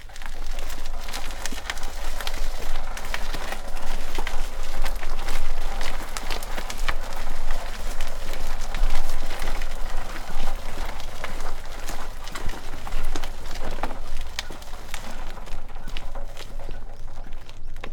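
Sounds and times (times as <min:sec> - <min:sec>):
cub walking and pushing dirt: 0:00.0 - 0:17.9.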